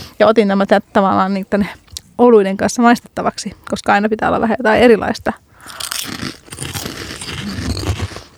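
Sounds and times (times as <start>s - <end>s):
speech: 0.2s - 6.3s
onion-and-spice flavored lentil chips crunching while being bitten and chewed: 5.6s - 8.3s.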